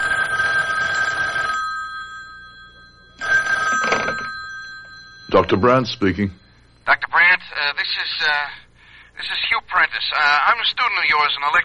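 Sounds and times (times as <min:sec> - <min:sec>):
telephone ringing on a call placed from a public phone: 0:00.0 - 0:08.3
speech: 0:05.4 - 0:06.4, 0:10.0 - 0:11.6.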